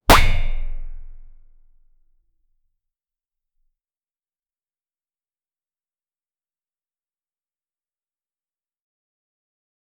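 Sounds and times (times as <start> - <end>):
punchy high-end cartoon impact: 0.1 - 1.7.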